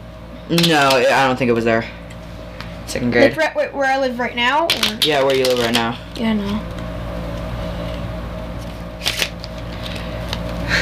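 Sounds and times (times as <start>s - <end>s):
low steady hum: 0.0s - 10.7s
speech: 0.5s - 2.0s, 2.9s - 6.8s
playing cards being shuffled by people practising shuffling: 4.7s - 6.8s, 8.6s - 10.6s.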